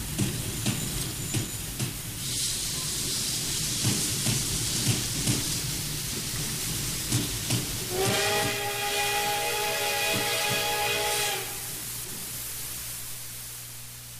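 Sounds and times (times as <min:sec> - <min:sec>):
steady rainstorm hissing: 0:00.0 - 0:14.1
long loud steam whistle: 0:07.8 - 0:11.8.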